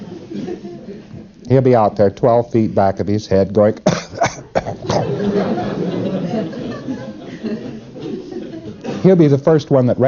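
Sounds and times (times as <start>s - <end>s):
laughter: 0.0s - 1.3s, 4.6s - 9.2s
speech: 0.5s - 4.3s, 9.0s - 10.0s
man imitating a cough: 3.8s - 5.2s.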